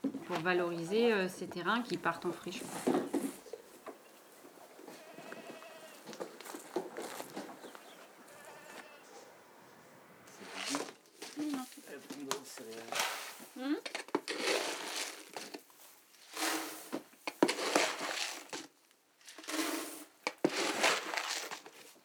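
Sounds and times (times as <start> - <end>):
rustling: 0.0 - 22.0
speech: 0.3 - 3.1
goats bleating inside a barn: 3.2 - 10.1.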